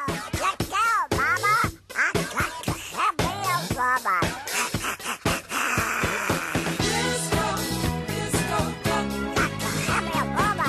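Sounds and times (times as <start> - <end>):
squawky quacking duck-like voice warbling: 0.0 - 6.5
bouncy novelty disco track with dance beat: 0.0 - 10.6.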